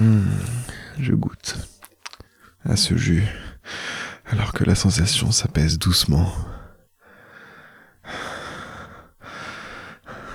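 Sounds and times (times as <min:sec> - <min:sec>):
speech: 0:01.0 - 0:01.6, 0:02.7 - 0:03.5, 0:04.3 - 0:06.6
kneeling man panting heavily with pleasure: 0:03.5 - 0:04.2, 0:07.0 - 0:10.3.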